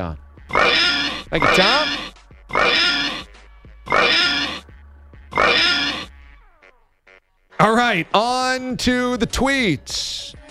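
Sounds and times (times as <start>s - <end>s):
speech: 0.0s - 3.2s, 7.7s - 10.4s
pig oinking: 0.5s - 3.3s, 3.9s - 4.7s, 5.3s - 6.2s.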